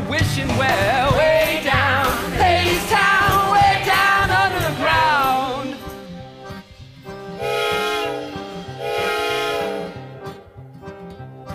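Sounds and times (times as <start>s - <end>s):
speech: 0.1s - 1.0s
train chugging: 0.3s - 11.1s
train whistle blasts: 7.2s - 10.5s.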